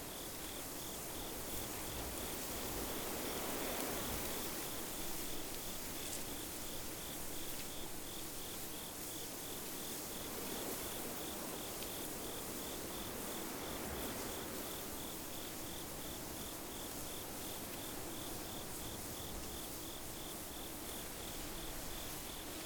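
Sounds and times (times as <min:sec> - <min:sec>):
insects in a wheatfield at dusk: 0:00.0 - 0:22.6.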